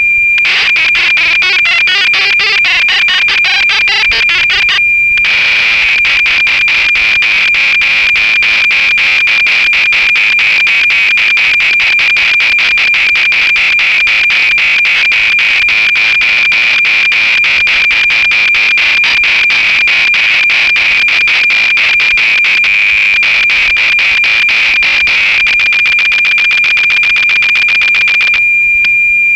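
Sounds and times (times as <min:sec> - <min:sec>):
drum machine cassette interface data tones: 0:00.2 - 0:29.2
Oberheim DMX drum machine factory sequence: 0:00.5 - 0:07.1.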